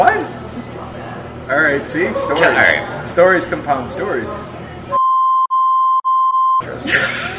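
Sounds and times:
noisy talk: 0.0 - 5.0
speech: 1.7 - 5.0
loud steady censor bleep tone: 4.9 - 6.6.

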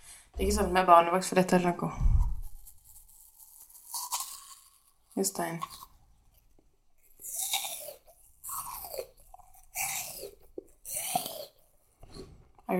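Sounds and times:
speech: 0.4 - 2.2, 5.2 - 5.8
crunchy chewing of an apple: 2.3 - 12.3.

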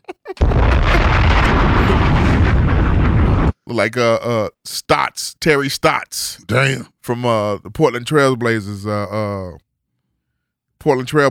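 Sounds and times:
bomb explosions: 0.4 - 3.6
speech: 3.7 - 9.6, 10.8 - 11.2.

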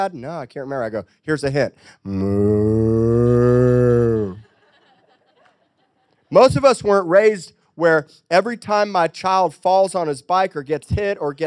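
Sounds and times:
speech: 0.0 - 4.4, 6.3 - 11.4
person imitating a cow mooing: 2.0 - 4.4
laughter: 3.2 - 6.3.

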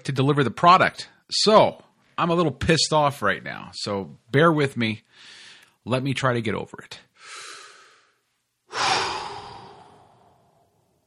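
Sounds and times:
speech: 0.0 - 7.4, 8.7 - 9.0
deep calming breathing: 5.1 - 5.8, 7.2 - 11.0
loud breathy exhale or sigh: 7.2 - 10.9.

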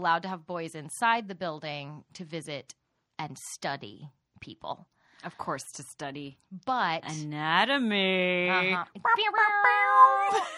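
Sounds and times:
speech: 0.0 - 10.5
two human voices harmonizing a meow-like wail: 7.1 - 10.4.

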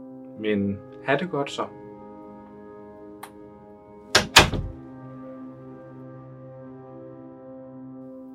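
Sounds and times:
speech: 0.4 - 1.8
door shut by a man with a small slam: 4.1 - 4.8.

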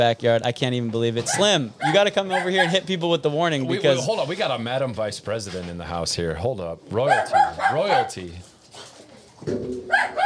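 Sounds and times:
speech: 0.0 - 8.9, 9.5 - 10.2
dog barking: 1.3 - 2.8, 7.1 - 8.2, 9.9 - 10.2.

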